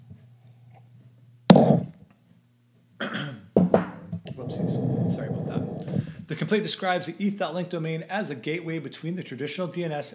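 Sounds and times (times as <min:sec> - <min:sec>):
low steady hum: 0:00.0 - 0:10.1
person clearing throat: 0:03.0 - 0:03.5
speech: 0:06.3 - 0:10.1.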